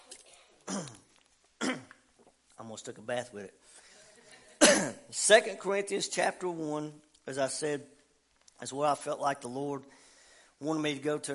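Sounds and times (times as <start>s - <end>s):
raspy throat clearing after a drink of water: 0.6s - 2.0s
speech: 0.7s - 1.0s, 2.7s - 3.9s, 4.7s - 8.0s, 8.6s - 10.0s, 10.6s - 11.3s.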